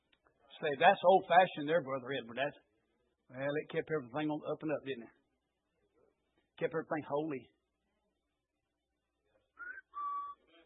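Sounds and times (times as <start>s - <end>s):
speech: 0.6s - 2.7s, 3.3s - 5.2s, 6.6s - 7.6s
person whistling birdlike notes imitating a pet bird: 9.6s - 10.4s.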